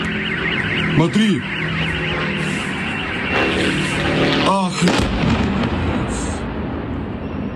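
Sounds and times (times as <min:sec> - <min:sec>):
sharp sweeping whine: 0:00.0 - 0:05.0
attack drone engine buzz over an oil refinery in Perm: 0:00.0 - 0:05.4
speech: 0:01.0 - 0:01.6, 0:04.7 - 0:05.2
loud rumbling noise: 0:03.9 - 0:06.7.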